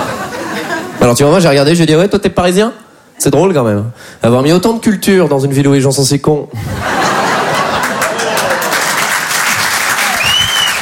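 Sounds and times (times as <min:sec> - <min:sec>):
laughter: 0:00.0 - 0:01.1, 0:06.5 - 0:09.3
speech: 0:01.0 - 0:07.1
crowd applauding: 0:07.2 - 0:10.7.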